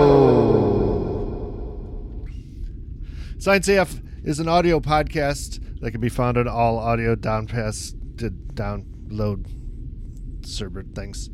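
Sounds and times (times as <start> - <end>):
smeared echo effect from an echo machine: 0.0 - 2.4
speech: 3.4 - 9.6, 10.4 - 11.3.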